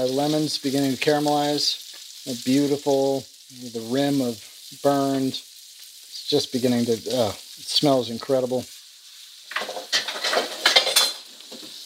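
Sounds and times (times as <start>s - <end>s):
speech: 0.0s - 5.5s, 6.3s - 8.8s
metal utensil scraping and clinking against a hot frying pan while moving fish: 9.5s - 11.3s.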